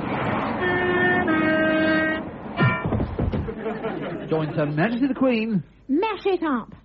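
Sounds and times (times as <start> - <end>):
train clattering and rolling past: 0.0 - 4.3
train horn blaring: 0.4 - 3.1
laughter: 3.3 - 4.9
speech: 4.3 - 6.8.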